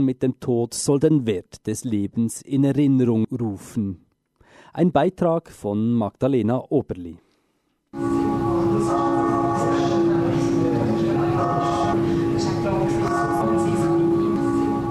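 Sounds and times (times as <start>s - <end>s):
speech: 0.0s - 4.0s, 4.7s - 7.2s, 7.9s - 8.3s
Bern Minster poor sinners' church bell tolling: 8.0s - 14.8s.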